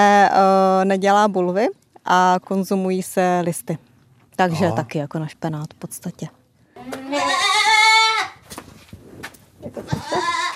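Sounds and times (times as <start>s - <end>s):
speech: 0.0s - 7.3s, 9.6s - 10.4s
Anglo-Nubian goat kids bleating at a farm in Horní Ředice: 6.8s - 8.4s, 9.8s - 10.5s.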